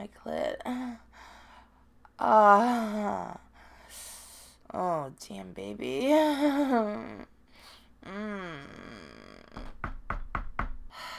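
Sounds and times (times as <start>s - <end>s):
speech: 0.0s - 1.1s, 2.2s - 4.1s, 4.7s - 7.3s, 8.0s - 9.0s
knocking on a door by trick-or-treaters on Halloween: 9.6s - 11.0s.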